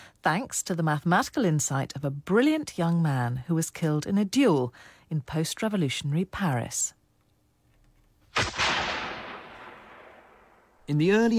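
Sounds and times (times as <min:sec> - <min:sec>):
speech: 0:00.2 - 0:07.0, 0:10.9 - 0:11.3
single loud gunshot across fields: 0:08.4 - 0:10.8.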